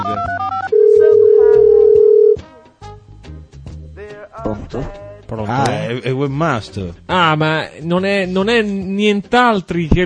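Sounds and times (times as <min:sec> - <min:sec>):
Skype incoming-call ringtone: 0:00.0 - 0:02.4
speech: 0:04.7 - 0:10.0.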